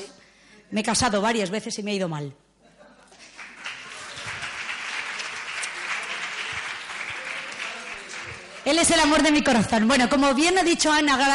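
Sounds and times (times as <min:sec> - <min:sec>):
speech: 0:00.7 - 0:02.5, 0:08.7 - 0:11.3
audience applauding: 0:03.2 - 0:09.4.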